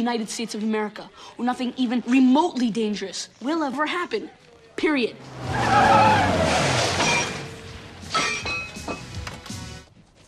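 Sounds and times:
speech: 0.0s - 6.7s
pizza delivery car tires screeching in a skid: 5.1s - 8.4s
objects knocked over clattering and breaking: 6.4s - 9.2s.

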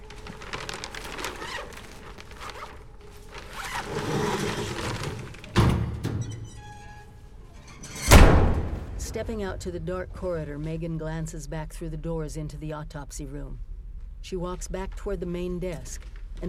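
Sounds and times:
body bag zipped closed with a rasping zipper pull in a morgue: 0.5s - 5.4s
morgue drawer sliding with a low rumble: 3.3s - 8.9s
heavy thud of a corpse pushed into a morgue drawer: 8.0s - 9.2s
speech: 9.2s - 16.4s.

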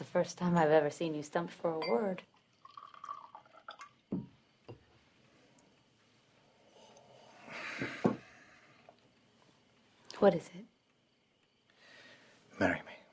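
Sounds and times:
speech: 0.1s - 2.3s, 10.2s - 10.7s, 12.6s - 12.9s
liquor poured into a glass: 2.3s - 4.4s
glass clinks and knocks at a dining table: 4.1s - 4.9s.

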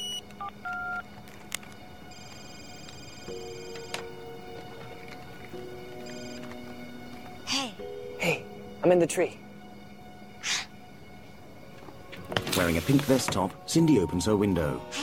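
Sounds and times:
cell phone keypad beeps: 0.0s - 1.0s, 2.1s - 4.1s, 6.0s - 6.4s
cell phone dial and ringing tones: 0.0s - 1.1s, 2.1s - 4.3s, 6.0s - 6.4s
speech: 8.8s - 9.4s, 12.7s - 15.0s.

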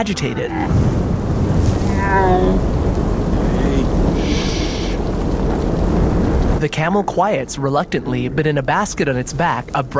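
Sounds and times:
speech: 0.0s - 1.0s, 2.1s - 2.8s, 6.6s - 9.9s
deep rumbling thunder: 0.6s - 6.6s
heavy rain falling in a thunderstorm: 0.7s - 7.6s.

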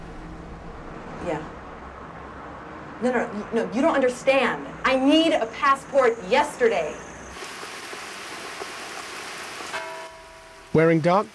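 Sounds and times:
speech: 1.2s - 1.6s, 3.0s - 7.0s, 10.8s - 11.3s
steady rain falling around a person holding an umbrella: 7.3s - 11.3s.

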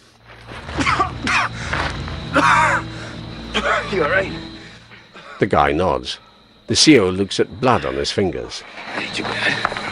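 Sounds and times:
low steady hum: 0.0s - 9.9s
man coughing harshly: 0.7s - 1.6s, 3.5s - 4.0s, 4.9s - 5.6s
speech: 3.6s - 4.5s, 5.4s - 9.8s.

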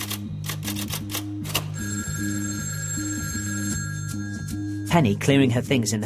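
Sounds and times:
telephone bell ringing: 1.7s - 4.9s
speech: 4.9s - 6.0s.

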